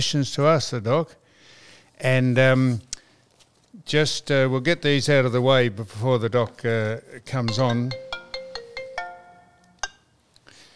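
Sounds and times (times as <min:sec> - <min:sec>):
speech: 0:00.0 - 0:01.2, 0:02.0 - 0:02.9, 0:03.7 - 0:08.2
phone ringtone with bright electronic notes: 0:07.5 - 0:10.0.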